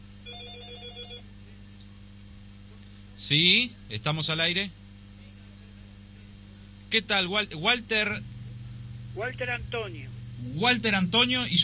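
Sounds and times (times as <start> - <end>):
telephone ringing with an incoming call: 0.3 - 1.2
speech: 3.2 - 4.8, 6.9 - 8.3, 9.2 - 11.6.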